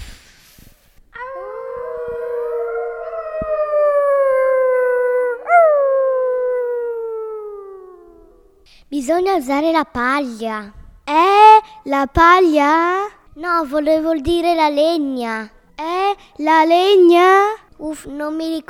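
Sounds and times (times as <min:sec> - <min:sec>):
wolf howling: 0:01.1 - 0:08.6
speech: 0:09.1 - 0:10.8, 0:11.9 - 0:18.6.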